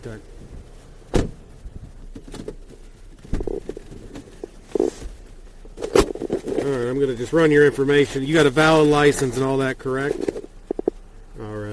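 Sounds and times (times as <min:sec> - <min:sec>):
speech: 0:00.0 - 0:00.5, 0:06.7 - 0:10.4
car door slamming shut: 0:01.1 - 0:01.5, 0:03.2 - 0:03.6.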